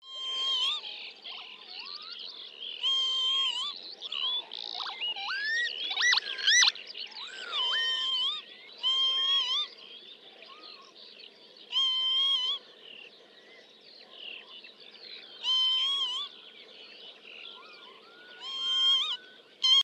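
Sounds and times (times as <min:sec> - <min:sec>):
lapwing calling: 0:02.8 - 0:09.8, 0:11.7 - 0:12.6, 0:15.4 - 0:16.4, 0:17.6 - 0:19.8.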